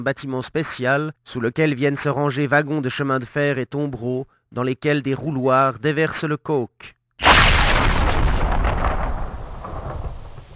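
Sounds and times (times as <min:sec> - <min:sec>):
speech: 0:00.0 - 0:07.0
massive gasworks explosion with deep thundering rumble: 0:07.2 - 0:10.5.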